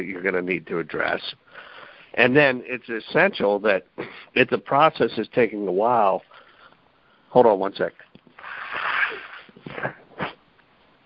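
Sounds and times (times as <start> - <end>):
speech: 0.0 - 6.4, 7.3 - 8.1
person sneezing: 8.4 - 10.4.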